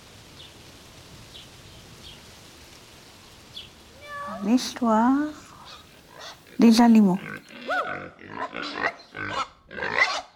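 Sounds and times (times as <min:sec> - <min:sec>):
speech: 0:04.4 - 0:05.4, 0:06.6 - 0:07.4, 0:08.0 - 0:10.0
pig grunting and squealing: 0:07.2 - 0:10.3.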